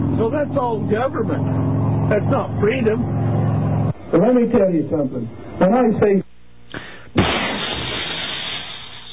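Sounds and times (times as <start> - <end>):
speech: 0.2 - 3.2, 4.1 - 6.9
brief pop: 7.2 - 8.2
cartoonish explosion blast with crackling rumble: 7.2 - 9.0
debris hiss: 7.2 - 9.1.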